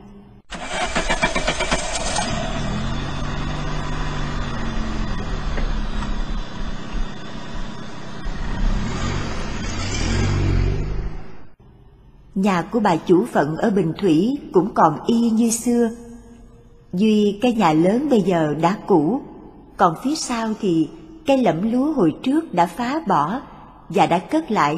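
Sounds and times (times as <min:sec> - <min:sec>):
car engine cranking, revving and pulling away: 0:00.5 - 0:11.6
speech: 0:12.4 - 0:16.0, 0:16.9 - 0:24.7.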